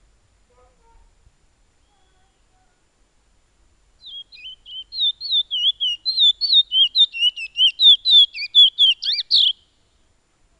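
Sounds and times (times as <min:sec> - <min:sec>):
piolet song with wavy whistled notes: 0:04.0 - 0:10.0.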